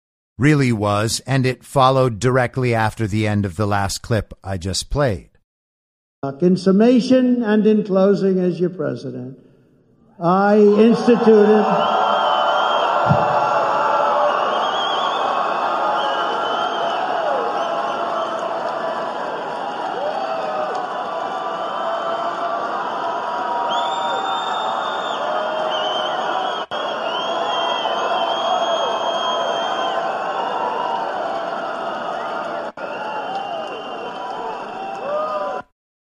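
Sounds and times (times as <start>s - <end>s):
speech: 0.4s - 5.3s, 6.2s - 9.4s, 10.2s - 12.0s
crowd applause at a conservative political conference: 10.8s - 35.7s.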